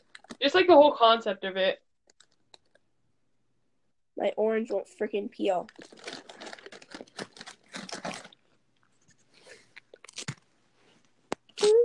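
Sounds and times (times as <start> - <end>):
speech: 0.4 - 1.8, 4.2 - 6.1
crunchy chewing for ASMR: 5.7 - 8.4, 9.4 - 10.4.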